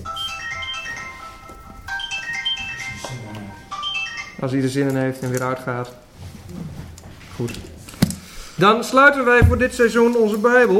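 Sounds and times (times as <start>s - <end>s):
mobile phone ringtone electronic melody: 0.0s - 4.6s
speech: 4.4s - 6.0s, 7.4s - 7.7s, 8.6s - 10.7s.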